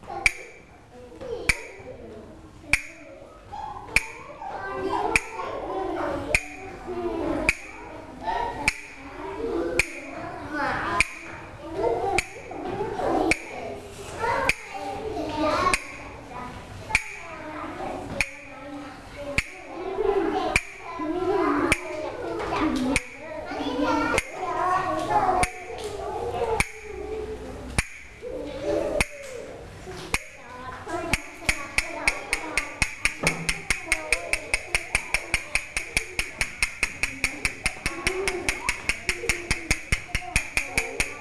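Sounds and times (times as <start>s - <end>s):
children's voices: 0.0s - 41.1s
teacher tapping a rhythm beat: 0.2s - 0.6s, 2.7s - 3.0s, 6.3s - 6.7s, 7.5s - 7.8s, 8.6s - 9.0s, 9.8s - 10.2s, 11.0s - 11.4s, 12.2s - 12.6s, 13.3s - 13.6s, 15.7s - 16.0s, 16.9s - 17.3s, 18.1s - 18.5s, 19.3s - 19.7s, 20.5s - 20.9s, 21.7s - 22.0s, 22.8s - 23.2s, 25.4s - 25.9s, 26.6s - 26.9s, 27.7s - 28.2s, 31.1s - 41.1s.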